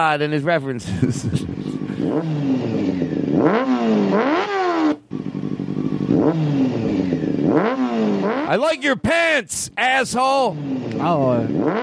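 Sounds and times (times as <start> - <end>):
speech: 0.0 - 4.6, 6.1 - 11.8
laughter: 0.7 - 2.1
motorcycle engine revving: 1.2 - 8.8, 10.3 - 11.8.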